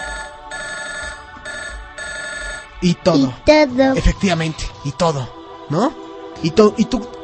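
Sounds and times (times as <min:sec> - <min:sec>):
telephone ringing with electronic trill: 0:00.0 - 0:02.7
speech: 0:02.8 - 0:07.2.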